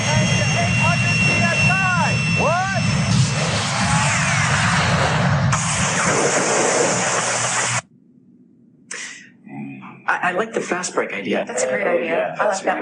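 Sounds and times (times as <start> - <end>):
jet propulsion pack roaring: 0.0 - 7.9
short hissing burst: 5.5 - 7.8
speech: 10.3 - 12.8.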